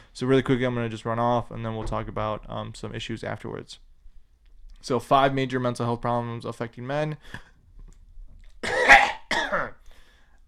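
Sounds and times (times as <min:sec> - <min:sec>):
speech: 0:00.2 - 0:03.9, 0:04.8 - 0:07.5
throat clearing: 0:08.6 - 0:09.8.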